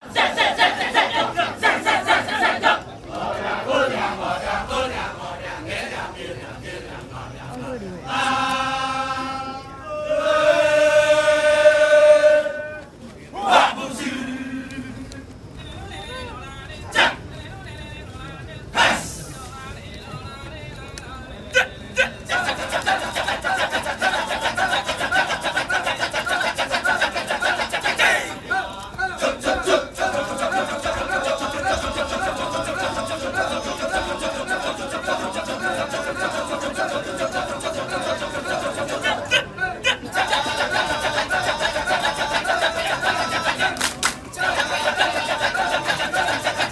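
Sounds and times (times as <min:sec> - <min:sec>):
Balinese kecak dance chanting: 0:00.0 - 0:46.6.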